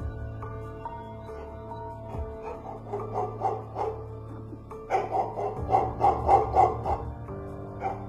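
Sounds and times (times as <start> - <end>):
steady low drone: 0.0 - 8.0
chained dog barking frantically in a kitchen at night: 2.4 - 4.1, 4.8 - 7.2, 7.8 - 8.0.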